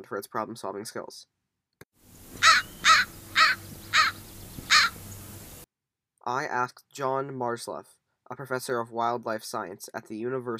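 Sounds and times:
speech: 0.0 - 1.4, 6.3 - 10.5
American crow cawing: 2.4 - 5.0.

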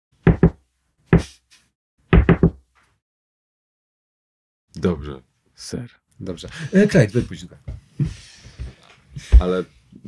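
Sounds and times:
secret code knock on a door: 0.3 - 0.6, 2.1 - 2.6
speech: 4.8 - 8.3, 9.2 - 10.0.

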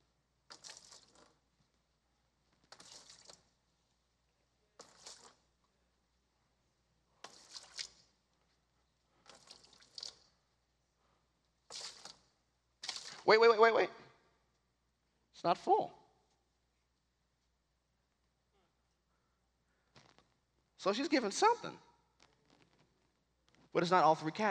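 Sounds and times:
liquid pouring into a bucket during a church demonstration: 0.5 - 1.4, 2.6 - 3.5, 4.8 - 5.4, 7.2 - 8.0, 9.2 - 10.3, 12.8 - 13.3
speech: 13.3 - 14.0, 15.4 - 16.0, 20.8 - 21.9, 23.8 - 24.4.

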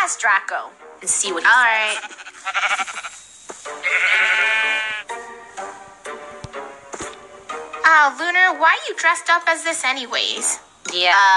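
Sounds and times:
speech: 0.0 - 4.2, 7.9 - 11.3
sheep bleating: 1.7 - 5.1.

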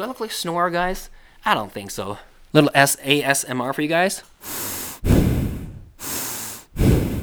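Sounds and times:
speech: 0.0 - 5.3
man breathing deeply through clear nasal passages: 4.4 - 7.2.

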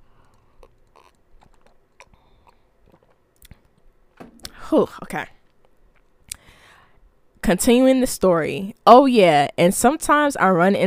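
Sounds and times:
person sipping a drink: 0.1 - 3.9
person swallowing: 0.4 - 3.8
speech: 4.7 - 5.4, 7.5 - 10.8.

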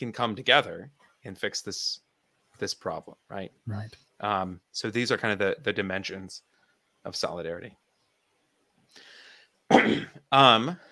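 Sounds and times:
speech: 0.0 - 2.0, 2.6 - 7.8, 9.7 - 10.9
person coughing into the microphone: 9.7 - 10.2.

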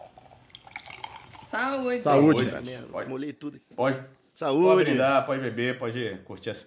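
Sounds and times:
freshly opened beer pouring and fizzing: 0.0 - 2.6
speech: 1.5 - 6.6.

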